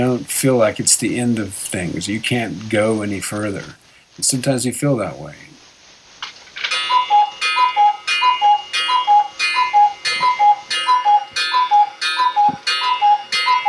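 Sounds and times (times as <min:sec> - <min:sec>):
speech: 0:00.0 - 0:05.5
cuckoo clock ticking: 0:06.7 - 0:13.6.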